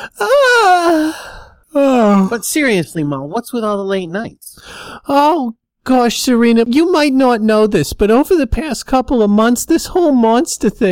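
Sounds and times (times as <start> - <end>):
speech: 0.0 - 1.4, 2.3 - 10.9
person yawning: 0.0 - 2.4
soft breathy exhale: 4.6 - 5.1.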